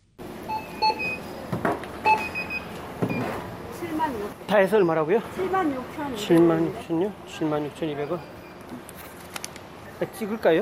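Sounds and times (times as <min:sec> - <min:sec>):
electronic checkout beeps at a store register scanning items: 0:00.2 - 0:01.4, 0:02.0 - 0:05.8, 0:07.6 - 0:08.8
speech: 0:04.1 - 0:08.8, 0:10.0 - 0:10.5.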